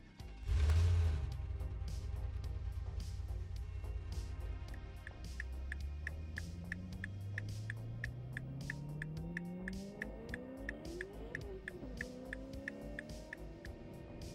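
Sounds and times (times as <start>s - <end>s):
car engine accelerating: 0.2s - 14.3s
faint regular ticking: 4.7s - 13.7s.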